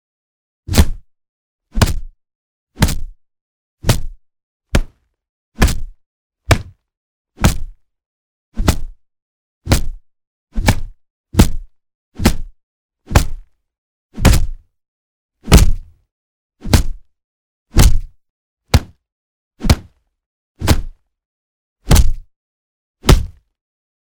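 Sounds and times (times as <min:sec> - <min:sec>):
boxing punches: 0:01.8 - 0:02.1, 0:02.8 - 0:03.2, 0:03.8 - 0:05.0, 0:05.6 - 0:06.8, 0:07.4 - 0:07.8, 0:08.6 - 0:09.0, 0:09.7 - 0:10.0, 0:10.6 - 0:12.5, 0:13.1 - 0:13.4, 0:14.2 - 0:14.6, 0:15.5 - 0:15.9, 0:16.6 - 0:17.1, 0:17.8 - 0:18.1, 0:18.7 - 0:19.0, 0:19.6 - 0:20.0, 0:20.6 - 0:21.0, 0:21.9 - 0:22.2, 0:23.0 - 0:23.4.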